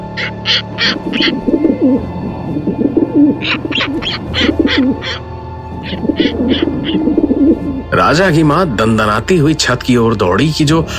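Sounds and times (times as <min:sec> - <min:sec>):
birds cooing and warbling on a rooftop: 0:00.0 - 0:07.9
speech: 0:00.6 - 0:02.8, 0:03.4 - 0:10.9.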